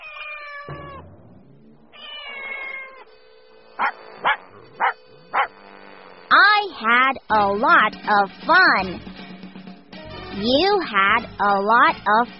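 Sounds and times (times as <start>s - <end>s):
cat giving drawn-out wavering meows: 0.0s - 1.1s, 1.9s - 3.1s
dog barking in sharp bursts: 3.8s - 5.5s
speech: 6.8s - 9.1s, 10.4s - 12.3s.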